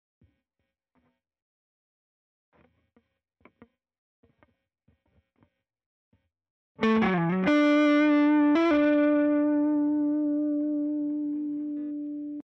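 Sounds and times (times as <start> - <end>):
crunch guitar fills: 6.8 - 12.4.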